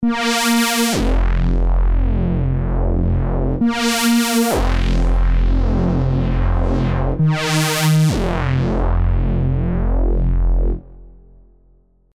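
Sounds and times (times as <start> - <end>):
bass synth: 0.0 - 12.0.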